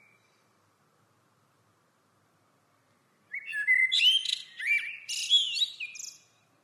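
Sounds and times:
common blackbird Turdus merula singing: 3.3s - 6.4s.

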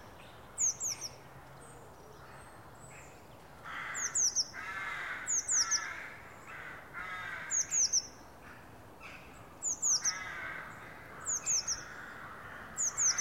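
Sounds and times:
Eurasian blue tit Cyanistes caeruleus sharp high-pitched calls: 0.6s - 1.2s, 3.7s - 8.2s, 9.0s - 13.1s.

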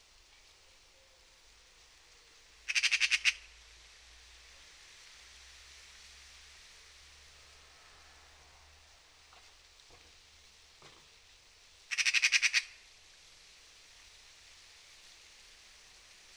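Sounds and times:
faint background noise: 0.0s - 16.3s
Eurasian magpie chattering: 2.7s - 3.4s, 11.9s - 12.7s.

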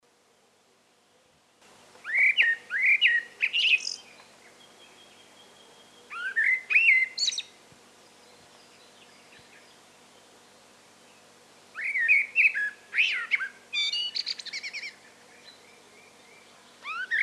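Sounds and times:
Common blackbird Turdus merula singing whistled fluty phrases: 2.0s - 17.2s.

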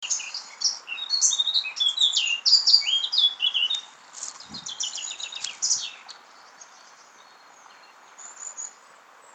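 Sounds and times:
Eurasian blackcap song, Sylvia atricapilla: 0.0s - 9.3s
faint low thump: 4.4s - 4.7s.

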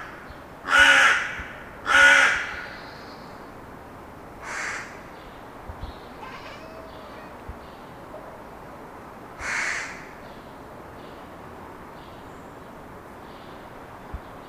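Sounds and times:
Carrion Crow Corvus corone cawing: 0.7s - 2.6s, 4.4s - 5.0s, 6.2s - 7.4s, 9.4s - 10.0s.

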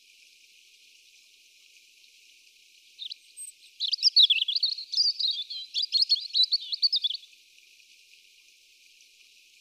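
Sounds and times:
European robin singing a fast warbling phrase: 3.0s - 7.3s.

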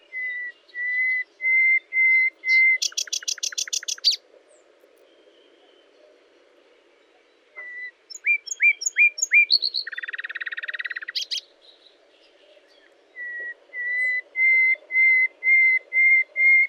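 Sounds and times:
common nightingale singing whistles and rattling clicks: 0.0s - 4.2s, 7.0s - 16.6s.

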